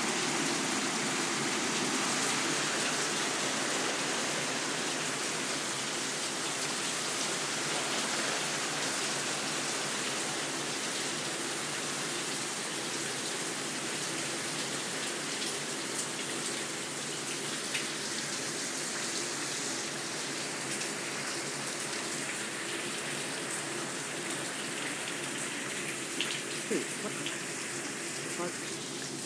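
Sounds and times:
steady dense rain drumming on a hard patio roof: 0.0 - 29.2
scattered sharper rain drips: 25.1 - 27.6.

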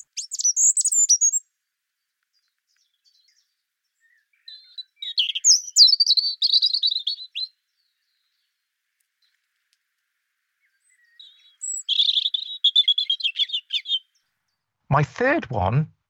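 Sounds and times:
European robin singing: 0.0 - 1.5, 2.3 - 8.6, 10.6 - 14.6
speech: 14.9 - 16.0.

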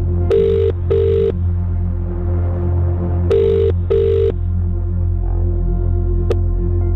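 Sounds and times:
steady low hum on a phone line: 0.0 - 6.9
telephone ringing through a line on an outgoing call: 0.3 - 1.3, 3.3 - 4.4.

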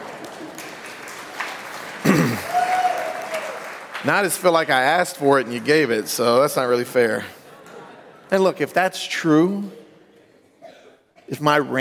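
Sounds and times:
audience clapping: 0.0 - 6.3
speech: 4.0 - 7.4, 8.3 - 9.8, 11.3 - 11.8.

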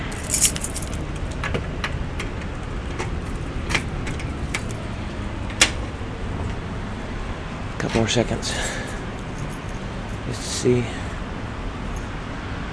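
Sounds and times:
low rumble of road traffic: 0.0 - 12.7
keys jangling and clinking in the rain: 0.1 - 1.4, 8.7 - 10.2
speech: 7.9 - 8.9, 10.6 - 11.0.

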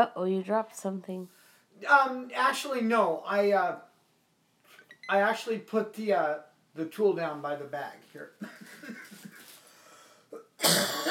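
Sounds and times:
speech: 0.0 - 3.9, 5.1 - 9.0
loud harsh cough: 10.4 - 11.0.

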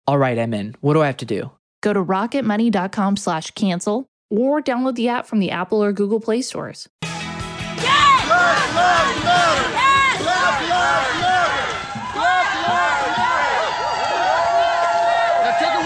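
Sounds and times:
speech: 0.1 - 7.0
crowd of marchers arriving and chanting and yelling: 7.7 - 15.8.

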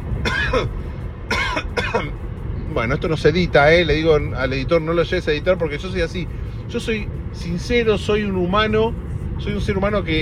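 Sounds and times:
man coughing harshly: 0.2 - 2.2
speech: 0.5 - 0.9, 2.8 - 10.2.

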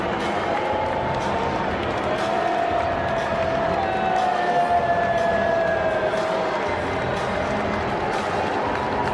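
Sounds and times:
large crowd booing loudly: 0.2 - 9.1.

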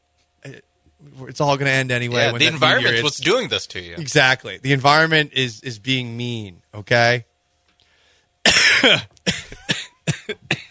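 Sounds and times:
speech: 0.4 - 7.3, 8.4 - 9.4
laughter: 2.1 - 4.6
person having a harsh coughing fit: 2.2 - 3.1, 8.5 - 10.6.

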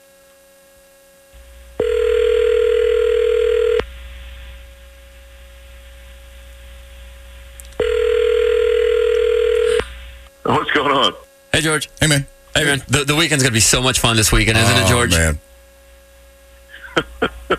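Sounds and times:
faint hum: 0.0 - 17.5
telephone dial tone while a call is dialed: 1.8 - 3.8, 7.8 - 9.8
speech: 11.6 - 15.5.

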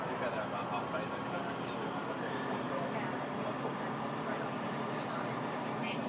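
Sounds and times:
Turbostar or Sprinter-type diesel passenger train engine drone heard on board: 0.0 - 6.0
train track rumble: 0.0 - 6.0.

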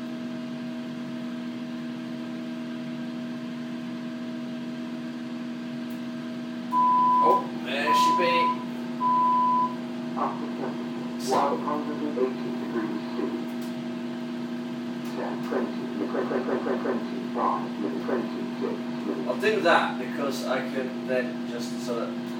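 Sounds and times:
microwave oven humming: 0.0 - 22.3
microwave oven electronic beeps: 6.8 - 9.8
person talking quietly: 10.2 - 13.6, 15.1 - 22.2
speech: 19.5 - 22.3.

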